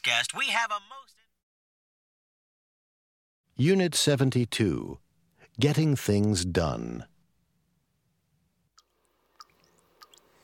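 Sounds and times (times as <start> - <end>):
speech: 0.0 - 1.2, 3.6 - 5.0, 5.6 - 7.1
bathroom faucet with a worn washer dripping: 8.7 - 10.4.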